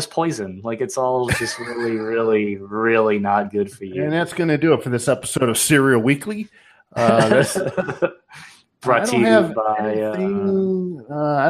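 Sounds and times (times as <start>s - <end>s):
speech: 0.0s - 11.4s
laughter: 1.2s - 4.0s, 7.0s - 10.5s
person coughing hard with rough throaty bursts: 7.0s - 8.1s.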